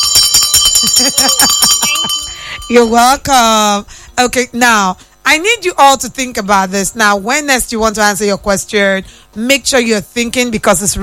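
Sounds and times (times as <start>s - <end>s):
bell ringing rapidly: 0.0s - 3.7s
speech: 0.9s - 11.0s.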